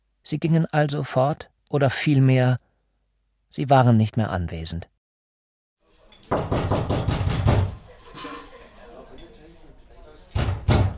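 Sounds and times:
speech: 0:00.2 - 0:02.6, 0:03.5 - 0:04.9
sharp knocks on a small wooden door: 0:06.3 - 0:07.8, 0:10.4 - 0:10.9.

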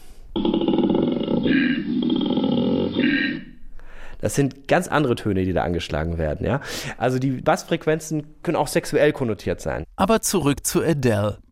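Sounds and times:
male koala bellowing mating call: 0:00.4 - 0:03.6
speech: 0:04.2 - 0:11.5.

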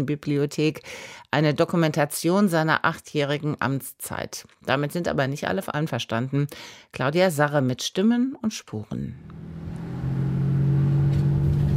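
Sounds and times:
speech: 0:00.0 - 0:09.6
old worn-out car driving with roaring exhaust through Chicago's South Side: 0:09.2 - 0:11.7.

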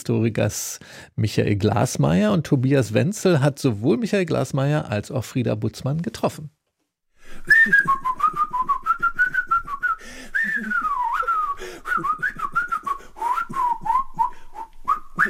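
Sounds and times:
speech: 0:00.0 - 0:06.6, 0:07.3 - 0:08.1
man whistling a speech-like string of tones: 0:07.4 - 0:15.2.

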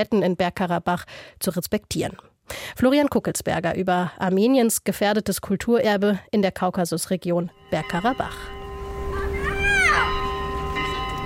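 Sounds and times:
speech: 0:00.0 - 0:08.6
church carillon ringing: 0:07.5 - 0:11.2
children shouting and squealing: 0:09.0 - 0:10.4.

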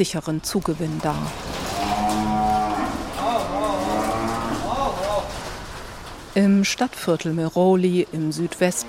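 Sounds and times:
speech: 0:00.0 - 0:01.6, 0:06.4 - 0:08.8
steady noise: 0:00.0 - 0:08.8
cows mooing in a shelter stable: 0:01.2 - 0:05.4, 0:08.5 - 0:08.8.

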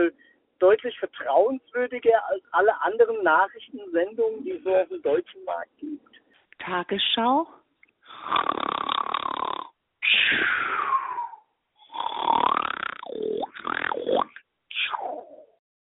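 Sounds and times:
speech: 0:00.0 - 0:07.6, 0:08.2 - 0:09.2, 0:10.1 - 0:11.1, 0:12.0 - 0:15.3
comical snoring sound effect: 0:08.1 - 0:15.6.

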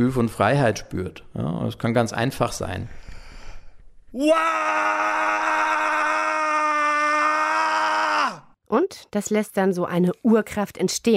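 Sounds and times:
speech: 0:00.0 - 0:03.0, 0:04.1 - 0:06.0, 0:08.7 - 0:11.1
person screaming outdoors: 0:04.2 - 0:08.5.

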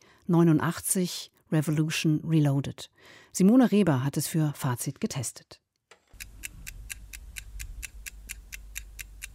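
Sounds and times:
speech: 0:00.3 - 0:05.6
clock ticking: 0:06.2 - 0:09.3.

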